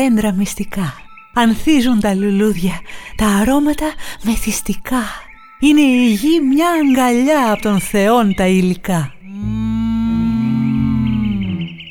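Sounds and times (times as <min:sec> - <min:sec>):
speech: 0:00.0 - 0:09.6
cow mooing: 0:09.3 - 0:11.8.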